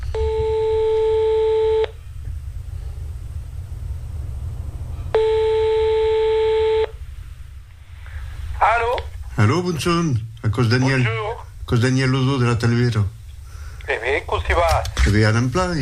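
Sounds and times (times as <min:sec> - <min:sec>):
constant low rumble: 0:00.0 - 0:15.8
long steady telephone line tones: 0:00.1 - 0:02.0, 0:05.1 - 0:07.0
speech: 0:09.4 - 0:13.2, 0:14.2 - 0:15.8.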